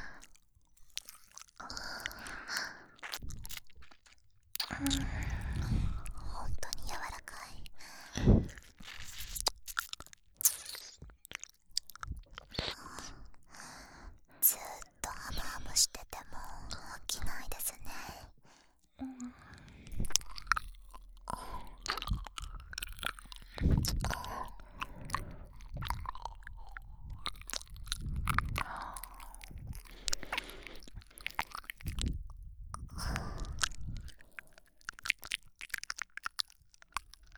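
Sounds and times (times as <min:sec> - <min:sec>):
whispered ASMR wet mouth clicks nibbling a soft earlobe: 0:00.0 - 0:13.6, 0:14.3 - 0:18.3, 0:19.0 - 0:37.3
chewing-like nibbles and crunchy bites on a soft earlobe: 0:00.1 - 0:13.3, 0:19.1 - 0:37.3
breathy ASMR whispering: 0:04.6 - 0:08.8, 0:12.5 - 0:34.6.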